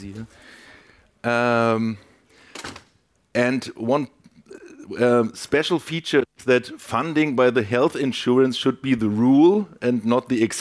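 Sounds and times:
speech: 0.0 - 0.6, 1.2 - 2.1, 3.4 - 10.5
door creaking with a tonal squeal: 2.5 - 3.0.

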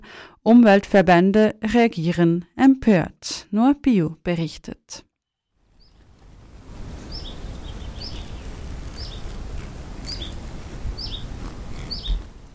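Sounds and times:
speech: 0.4 - 5.1
birds chirping in a mountain moorland: 5.8 - 6.2, 6.8 - 12.5
steady low rush of wind in a moorland: 6.3 - 12.5.

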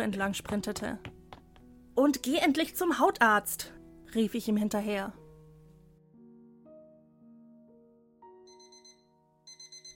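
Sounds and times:
speech: 0.0 - 1.1, 2.0 - 5.2
stepping electronic alarm clock melody: 8.4 - 9.9
alarm clock ringing: 8.5 - 9.9.

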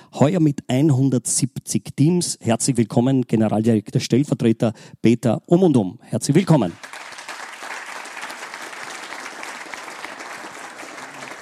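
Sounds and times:
speech: 0.2 - 7.1
crowd applauding: 6.7 - 11.3.

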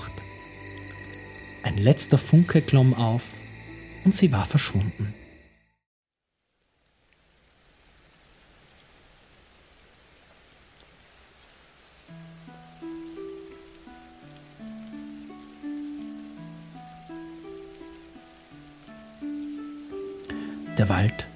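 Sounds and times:
calm melodic music bed with sustained notes: 0.0 - 5.5, 12.1 - 21.3
gentle rain falling: 0.0 - 5.6, 6.2 - 21.3
speech: 1.6 - 3.4, 4.0 - 5.2, 20.8 - 21.3.

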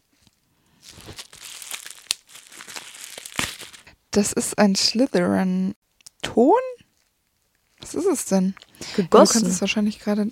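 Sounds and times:
plastic bubble wrap crinkling as a cast object is unwrapped: 0.0 - 4.0, 6.9 - 8.8
speech: 4.2 - 5.8, 6.4 - 6.7, 7.9 - 10.3.

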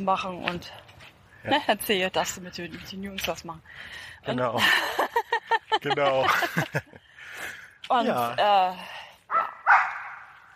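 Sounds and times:
speech: 0.0 - 5.0, 5.8 - 9.0
laughter: 4.6 - 7.1
dog barking beside a dog park: 9.3 - 10.4.

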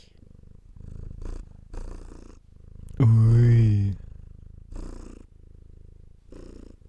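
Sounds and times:
cat purring on lap: 0.0 - 6.8
person exclaiming: 3.0 - 4.0.

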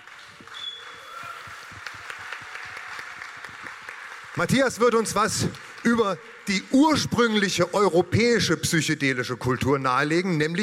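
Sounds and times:
crowd applauding speakers: 0.0 - 8.2
speech: 4.4 - 10.6.

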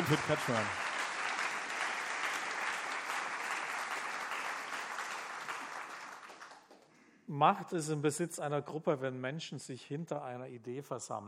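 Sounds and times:
crowd applauding: 0.0 - 7.0
speech: 0.1 - 0.8, 7.3 - 11.2.

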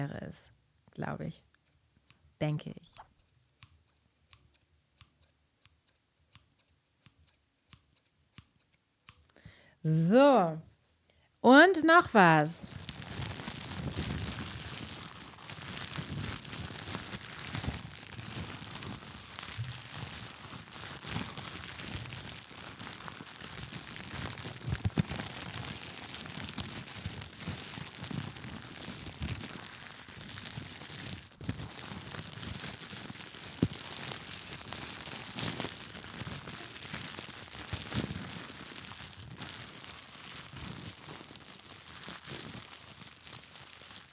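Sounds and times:
speech: 0.0 - 1.5, 2.4 - 3.1, 9.8 - 10.7, 11.4 - 12.9
crinkling plastic foil of a veterinary glove: 12.2 - 44.1.

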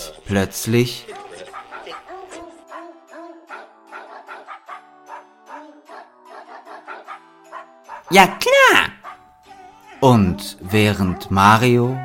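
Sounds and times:
speech: 0.3 - 1.1, 8.1 - 9.0, 10.0 - 12.0
dog yipping and howling tunefully from an old radio: 1.4 - 8.1, 9.0 - 10.0.

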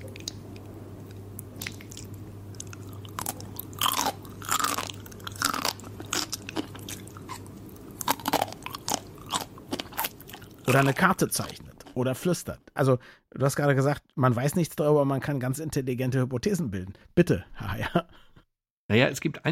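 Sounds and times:
constant low hum: 0.0 - 12.0
crunchy chips being eaten: 1.6 - 12.0
speech: 10.7 - 18.3, 18.9 - 19.5.

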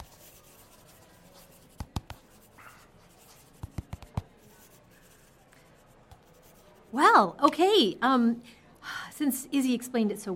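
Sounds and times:
pen scribbling on paper: 0.0 - 6.7
speech: 7.0 - 8.6, 9.2 - 10.3.

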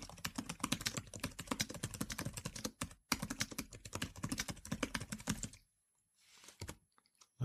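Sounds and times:
typing on a braille device keyboard: 0.0 - 5.6.

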